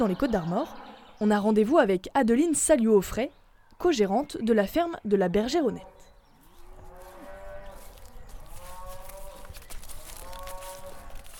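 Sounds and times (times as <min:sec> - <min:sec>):
farmyard noise: 0:00.0 - 0:02.0, 0:05.0 - 0:11.3
speech: 0:00.0 - 0:06.0
dairy cows mooing on an organic farm: 0:06.4 - 0:11.3.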